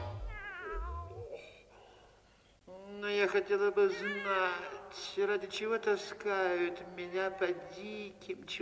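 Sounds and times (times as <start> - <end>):
cat meowing: 0.1 - 1.5, 3.9 - 4.9
cat lying on a pillow purring: 0.1 - 1.6
speech: 3.3 - 8.6.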